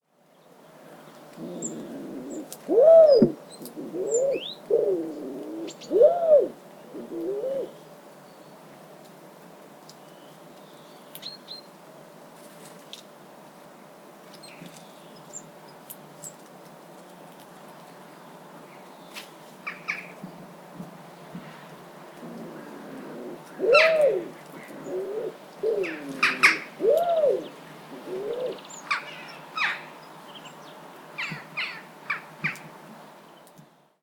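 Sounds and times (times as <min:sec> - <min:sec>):
wood pigeon calling: 0:01.4 - 0:07.8, 0:21.4 - 0:30.0.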